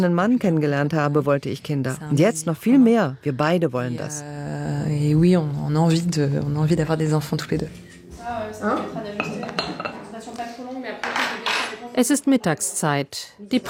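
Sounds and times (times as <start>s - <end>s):
speech: 0.0s - 9.3s, 12.0s - 13.6s
dishes and cutlery clinking in a small doctor's practice kitchen: 7.6s - 11.9s.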